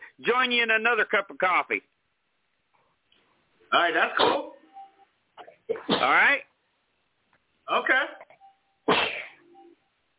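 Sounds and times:
speech: 0.2 - 1.9, 3.7 - 4.5, 5.7 - 6.5, 7.7 - 8.2
person sneezing: 8.9 - 9.4.

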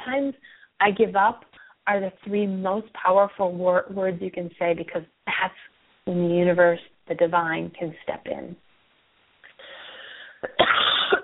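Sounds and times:
speech: 0.0 - 8.6
person coughing with a throaty rasp: 10.4 - 11.2.

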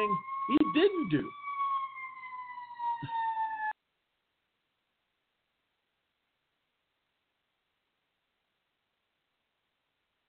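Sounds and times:
speech: 0.0 - 1.4
police car siren wailing: 0.0 - 3.8.

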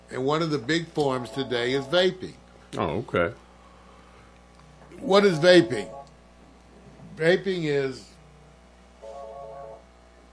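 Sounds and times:
quiet hum: 0.0 - 10.3
speech: 0.1 - 3.4, 5.0 - 6.0, 7.2 - 8.1
electronic phone notification tone: 5.0 - 6.1, 9.0 - 9.8.

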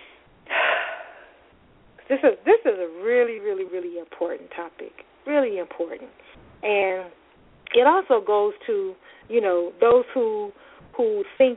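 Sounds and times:
deep breath drawn in: 0.0 - 1.5
speech: 2.1 - 11.5.

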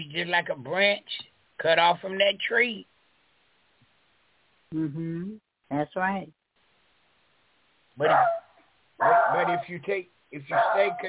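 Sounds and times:
speech: 0.1 - 2.9, 4.7 - 6.4, 8.0 - 8.4, 9.0 - 11.0
dog barking: 8.0 - 9.8, 10.5 - 11.0.

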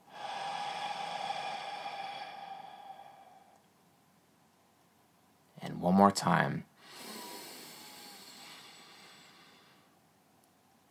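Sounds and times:
deep breath in through the nose and out through the mouth: 0.0 - 3.7, 6.8 - 10.0
speech: 5.8 - 6.7.

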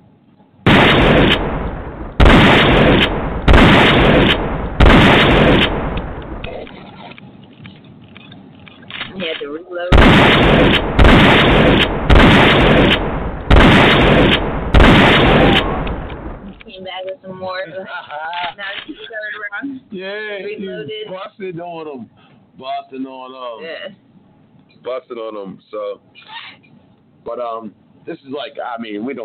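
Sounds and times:
shotgun blasts: 0.7 - 6.6, 9.9 - 16.6
rumbling echo of shotgun blasts: 0.7 - 6.7, 9.9 - 16.6
speech: 24.8 - 29.2.

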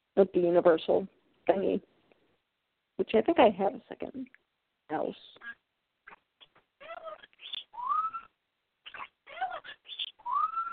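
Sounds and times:
speech: 0.2 - 1.9, 3.0 - 5.6
pet bird squealing with shrill chirps and whistles: 5.4 - 10.7.

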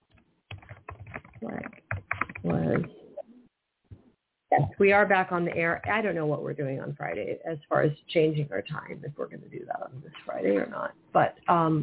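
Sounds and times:
typing a message in an online chat on a computer keyboard: 0.5 - 2.8
speech: 2.5 - 3.0, 4.8 - 11.8.

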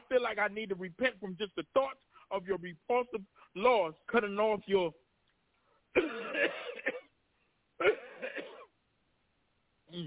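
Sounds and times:
speech: 0.1 - 5.0, 5.9 - 7.0, 7.8 - 8.4
harsh rasping coughs: 6.0 - 7.1, 7.8 - 8.7.

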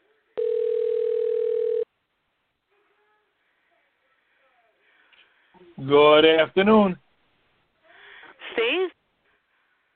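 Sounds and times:
telephone call tone beep: 0.4 - 1.9
speech: 5.8 - 7.0.

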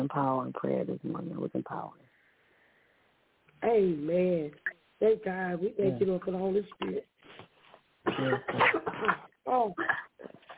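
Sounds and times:
speech: 0.0 - 2.1, 3.6 - 7.5, 8.1 - 10.5
harsh coughs: 8.1 - 10.5.

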